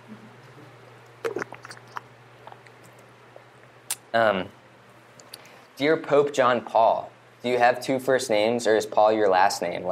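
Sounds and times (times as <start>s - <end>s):
steady low electrical hum: 0.0s - 9.9s
wet mouth clicks: 1.0s - 4.1s, 5.2s - 5.5s
person sipping water: 1.1s - 3.8s
slurping gulp: 1.2s - 2.8s
speech: 4.1s - 4.6s, 5.8s - 9.9s.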